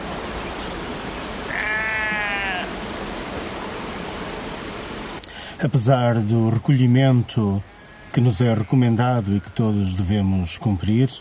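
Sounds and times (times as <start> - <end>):
rushing hiss-like noise: 0.0 - 11.1
sheep bleating in a field: 1.5 - 2.8
speech: 5.6 - 11.1.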